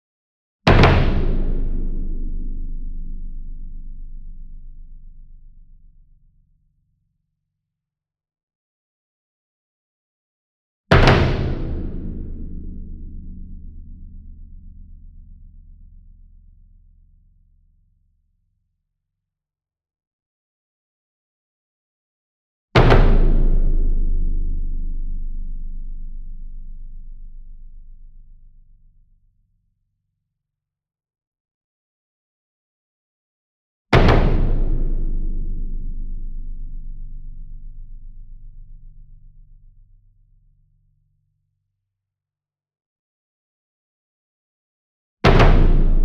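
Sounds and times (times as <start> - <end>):
40 inch concert bass drum hit with double soft beater: 0.7 - 5.1, 10.9 - 15.0, 22.8 - 28.1, 34.0 - 39.4, 45.3 - 46.0.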